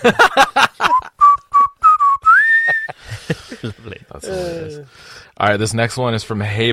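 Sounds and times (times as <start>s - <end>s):
speech: 0.0s - 0.4s, 5.4s - 6.7s
laughter: 0.0s - 1.2s, 2.4s - 4.8s
person whistling a short tune: 0.8s - 3.0s.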